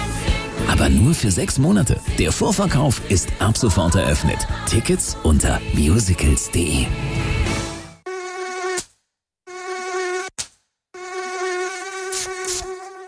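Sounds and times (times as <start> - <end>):
speech: 0.8 - 7.3
mosquito whine: 8.1 - 8.8, 9.5 - 10.3, 11.0 - 13.0.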